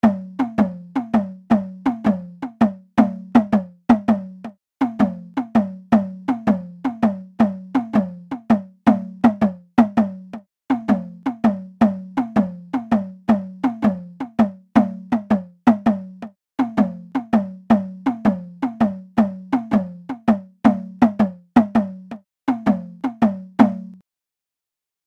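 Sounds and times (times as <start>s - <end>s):
Indian naqqara nagara drum percussion: 0.0s - 24.0s.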